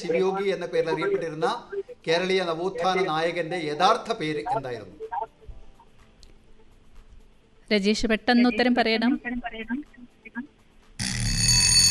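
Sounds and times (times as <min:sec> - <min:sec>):
speech: 0:00.0 - 0:05.3, 0:07.7 - 0:10.5
quiz show buzzer: 0:11.0 - 0:11.8.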